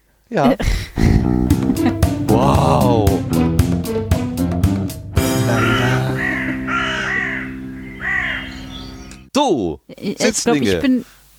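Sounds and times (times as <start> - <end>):
speech: 0.3 - 1.4, 9.5 - 11.2
laughter: 0.5 - 3.2, 5.3 - 7.3, 10.1 - 11.0
quick rhythmic struck notes in a jingle: 1.0 - 7.6
sustained chord in a jingle: 1.4 - 9.2
loud crow-like caws: 5.5 - 8.8.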